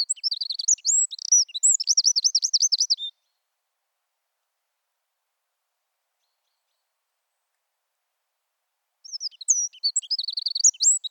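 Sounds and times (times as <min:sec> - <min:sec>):
Eurasian wren Troglodytes troglodytes singing high whistled notes: 0:00.0 - 0:03.1, 0:09.1 - 0:11.0.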